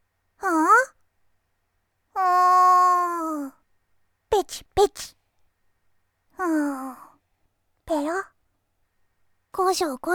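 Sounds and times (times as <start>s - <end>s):
person imitating a cat meow: 0.4s - 1.0s, 2.2s - 3.6s
speech: 4.8s - 5.2s, 9.6s - 10.1s.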